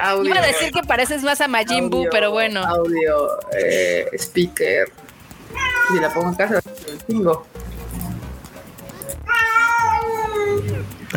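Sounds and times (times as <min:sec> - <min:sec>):
speech: 0:00.0 - 0:05.1, 0:05.9 - 0:07.6
cats meowing: 0:05.5 - 0:06.6, 0:08.9 - 0:10.9.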